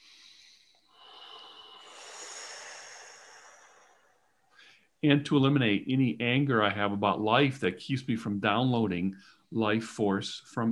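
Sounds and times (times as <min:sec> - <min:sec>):
person taking a long breath during a guided breathing and healing exercise: 0:00.0 - 0:05.0
speech: 0:05.0 - 0:10.7.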